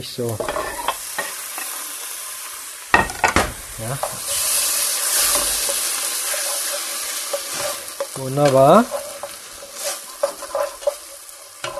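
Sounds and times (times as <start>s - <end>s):
speech: 0.0s - 0.6s, 3.8s - 4.4s, 8.2s - 9.0s
tomatoes simmering and sizzling in a pan: 0.0s - 11.7s
utensil scraping and stirring tomatoes in a pan: 0.4s - 1.8s, 3.8s - 11.7s.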